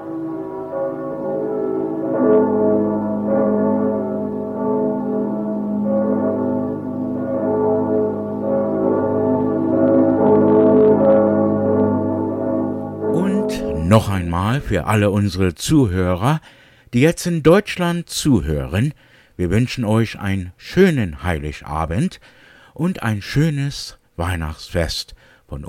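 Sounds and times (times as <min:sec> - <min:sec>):
church bells ringing: 0:00.0 - 0:15.2
speech: 0:14.0 - 0:25.6.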